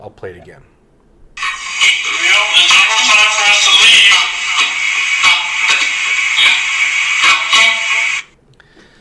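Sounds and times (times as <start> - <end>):
speech: 0.0 - 0.8
hissy echo box playback with garbled voice-like fragments: 1.4 - 8.4.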